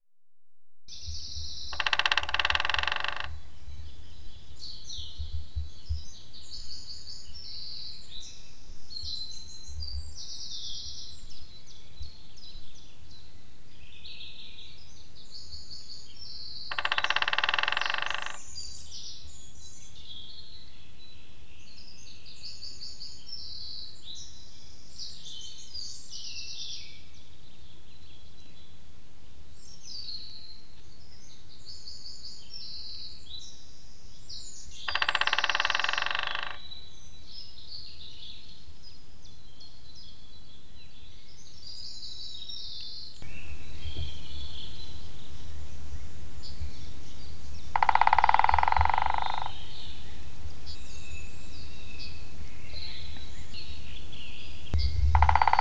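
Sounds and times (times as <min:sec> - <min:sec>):
white-backed woodpecker drumming: 0:01.4 - 0:03.9, 0:16.7 - 0:18.6, 0:34.9 - 0:36.7, 0:43.2 - 0:55.5.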